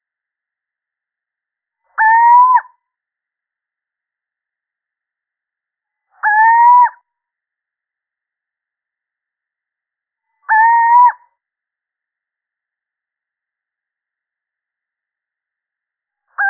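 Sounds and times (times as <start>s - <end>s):
male little owl hooting: 2.0s - 2.8s, 6.2s - 7.0s, 10.5s - 11.2s.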